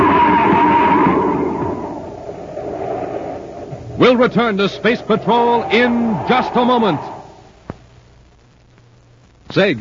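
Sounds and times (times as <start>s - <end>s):
car skid screeching as a car goes over a cliff on a foggy highway: 0.0s - 7.4s
dense crashing roar of a car going over a cliff: 0.0s - 7.4s
speech: 4.2s - 7.2s, 9.5s - 9.7s.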